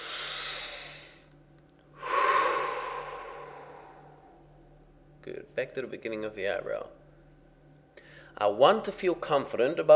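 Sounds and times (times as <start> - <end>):
deep breath: 0.0 - 1.3, 2.0 - 4.6, 8.0 - 8.4
speech: 5.2 - 7.0, 8.4 - 9.9.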